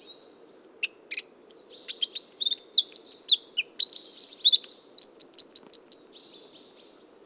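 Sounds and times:
Eurasian wren Troglodytes troglodytes singing: 0.8 - 6.2.

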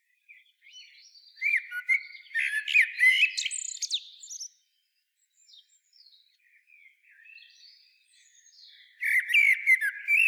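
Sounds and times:
common blackbird singing a rich fluty warble: 0.3 - 4.6, 6.8 - 10.2.

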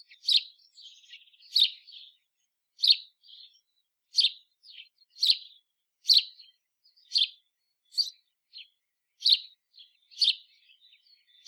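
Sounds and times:
house sparrow Passer domesticus quieter rattling chatter: 0.0 - 2.1, 4.2 - 6.5, 7.1 - 8.6, 9.2 - 11.4
house sparrow Passer domesticus giving loud sharp chirps: 0.0 - 11.4.

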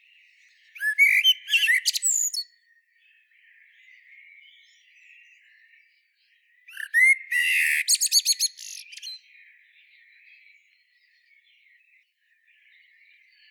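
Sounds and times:
common blackbird Turdus merula whistling, twittering and warbling: 0.8 - 2.5, 6.7 - 9.2.

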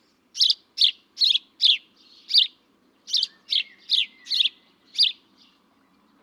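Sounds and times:
house sparrow Passer domesticus chirping: 0.4 - 5.6.

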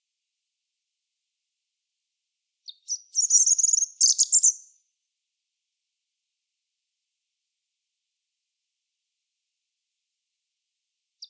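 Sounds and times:
European robin singing: 2.6 - 4.8.

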